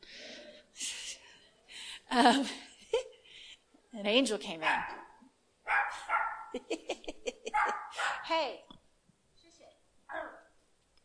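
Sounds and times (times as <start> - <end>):
speech: 2.1 - 2.6, 4.0 - 5.0, 6.6 - 6.9, 8.3 - 8.7
dog barking: 4.6 - 6.6, 7.5 - 8.3, 10.1 - 10.5
laughter: 6.5 - 7.9.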